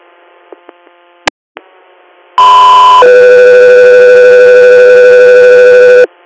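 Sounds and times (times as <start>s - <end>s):
radio dispatch alert tones: 2.4s - 6.1s.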